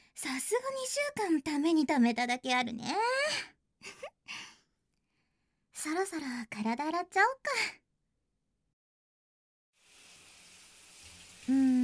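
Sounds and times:
speech: 0.2 - 4.4, 5.8 - 7.8, 11.5 - 11.8
hot water running for a bath: 9.8 - 11.8.

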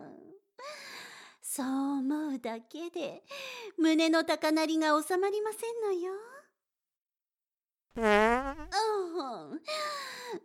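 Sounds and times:
speech: 1.6 - 6.4, 8.0 - 10.4
loud buzzing squeaky fart: 8.0 - 8.8.

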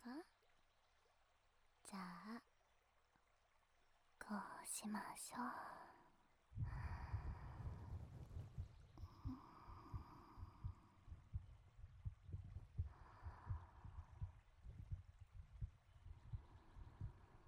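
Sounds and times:
speech: 0.0 - 0.3, 4.3 - 5.9
heartbeat heard with an ear pressed to a chest: 6.6 - 17.4.

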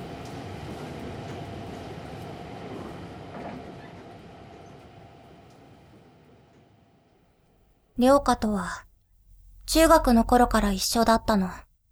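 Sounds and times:
train car wheels rumbling on rails inside a moving train: 0.0 - 6.8
speech: 8.0 - 8.9, 9.7 - 11.6.

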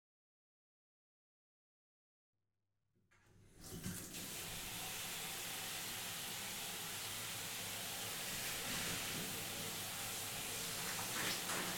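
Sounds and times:
warm water rinsing shampoo out of hair: 3.6 - 11.7.

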